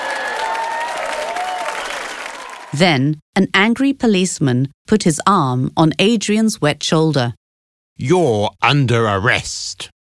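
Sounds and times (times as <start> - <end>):
hundreds of onlookers applauding after a rescue: 0.0 - 2.8
speech: 2.7 - 7.4, 8.0 - 9.9.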